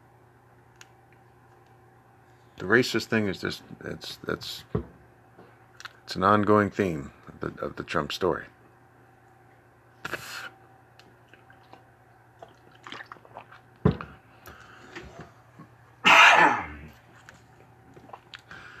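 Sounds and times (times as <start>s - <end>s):
faint steady hum: 0.0s - 18.7s
speech: 2.6s - 5.0s, 6.1s - 8.6s
person coughing: 16.0s - 16.9s
throat clearing: 16.0s - 16.9s.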